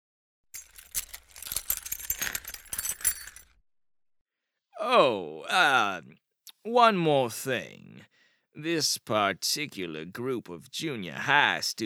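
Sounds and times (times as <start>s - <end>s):
bunch of keys jangling as they are handed over: 0.6s - 3.6s
speech: 4.8s - 11.8s.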